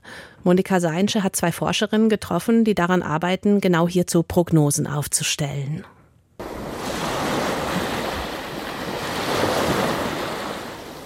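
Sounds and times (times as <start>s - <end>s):
speech: 0.4s - 6.0s
ocean surf breaking on a coast: 6.4s - 11.0s.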